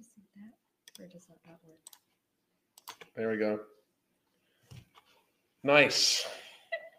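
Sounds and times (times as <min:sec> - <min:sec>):
computer keyboard clicks: 0:00.8 - 0:01.1, 0:01.8 - 0:02.1, 0:02.8 - 0:03.2
speech: 0:01.0 - 0:02.1, 0:03.2 - 0:03.8, 0:05.6 - 0:06.4.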